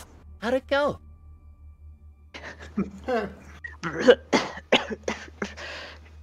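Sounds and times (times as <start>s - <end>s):
low steady hum: 0.0s - 6.2s
speech: 0.4s - 1.1s, 2.8s - 5.2s
person faking a coughing fit as if spitting up water: 2.4s - 5.7s
gagging sounds: 2.6s - 4.4s.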